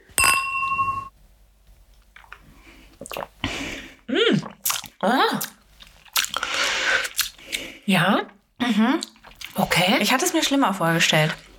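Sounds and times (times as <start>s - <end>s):
two glasses clinking in a toast: 0.1s - 1.1s
quiet sipping: 2.2s - 7.9s
speech: 3.0s - 3.4s, 4.4s - 5.6s, 7.9s - 11.4s.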